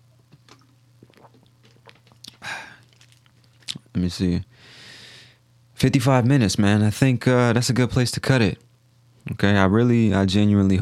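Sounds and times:
steady low electrical hum: 0:00.0 - 0:10.8
person sipping water: 0:00.5 - 0:03.8
small wet mouth clicks and slurps: 0:00.5 - 0:03.8
speech: 0:04.0 - 0:04.8, 0:05.8 - 0:10.8
loud breathy exhale: 0:04.5 - 0:05.4.

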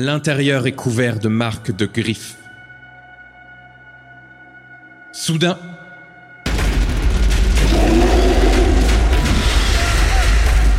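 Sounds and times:
speech: 0:00.0 - 0:02.4, 0:05.2 - 0:05.7
heavy booming gunfire from the trenches: 0:06.5 - 0:09.6
rumbling blasts: 0:06.5 - 0:10.7.

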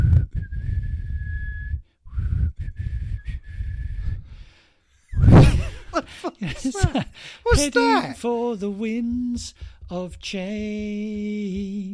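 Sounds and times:
person whistling a simple tune: 0:00.0 - 0:04.3
loud breathy exhale or gasp: 0:04.2 - 0:04.8, 0:07.2 - 0:07.5
laughter: 0:05.4 - 0:08.2
speech: 0:06.2 - 0:11.9.

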